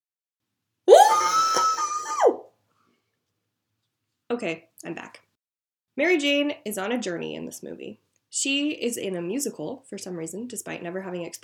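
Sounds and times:
person screaming: 0.9s - 2.5s
speech: 4.3s - 5.2s, 6.0s - 11.4s.

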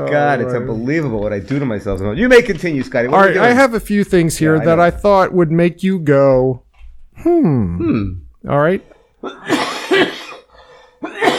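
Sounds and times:
speech: 0.0s - 6.6s, 7.2s - 10.2s
productive wet cough: 7.8s - 8.2s, 9.2s - 11.3s.

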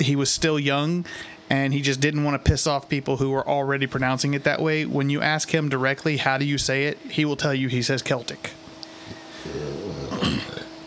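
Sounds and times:
speech: 0.0s - 8.6s
drawn-out low croaking burp: 9.4s - 10.8s.

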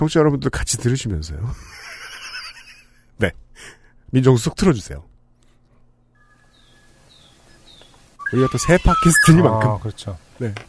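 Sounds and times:
speech: 0.0s - 1.8s, 3.2s - 5.1s, 8.3s - 10.6s
soft hissy outdoor background: 0.0s - 10.6s
laughter: 1.5s - 3.1s
faint black-naped oriole song: 6.2s - 9.6s.

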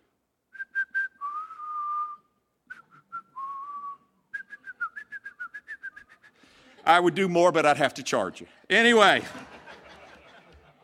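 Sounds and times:
person whistling the opening melody of a classical symphony: 0.5s - 6.4s
speech: 6.8s - 9.5s
laughter: 9.0s - 10.8s.

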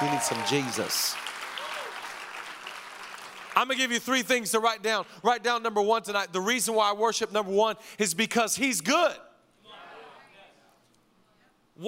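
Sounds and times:
speech: 0.0s - 1.3s, 3.6s - 9.3s
audience clapping and applauding: 0.0s - 4.1s.

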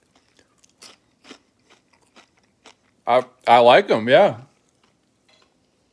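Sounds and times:
biting into a crunchy airy fry snack: 0.0s - 3.4s
speech: 3.1s - 4.5s.

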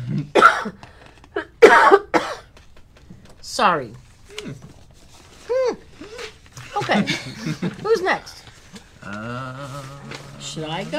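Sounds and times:
person coughing: 0.1s - 0.8s, 1.4s - 2.5s
speech: 0.1s - 0.9s, 3.6s - 4.7s, 6.8s - 8.4s, 9.1s - 10.9s
laughter: 6.7s - 8.3s.

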